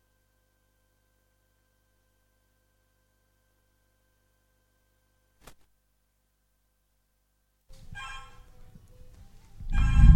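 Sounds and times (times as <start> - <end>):
telephone ringing with a buzzy tonal ringtone: 8.0 - 8.5, 9.7 - 10.1.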